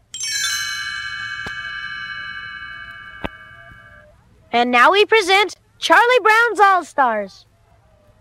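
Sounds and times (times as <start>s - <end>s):
bright page-turn chimes ringing: 0.0s - 4.2s
speech: 4.5s - 7.5s.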